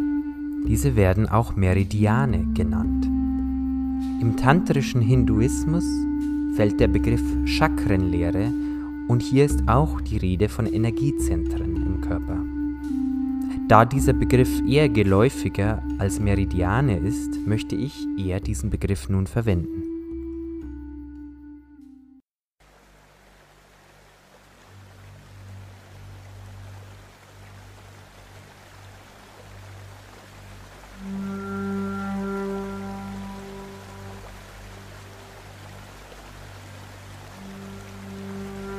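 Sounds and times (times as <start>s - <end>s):
soft sustained musical tones: 0.0s - 22.2s, 24.7s - 38.7s
speech: 0.6s - 3.2s, 4.2s - 12.5s, 13.7s - 19.8s
water flowing in a stream: 22.6s - 38.7s.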